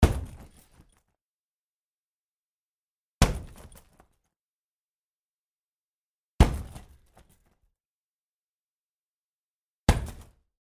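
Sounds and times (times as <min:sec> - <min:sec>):
karate kick hitting a punching bag: 0:00.0 - 0:00.6, 0:03.2 - 0:03.8, 0:06.4 - 0:07.0, 0:09.9 - 0:10.3.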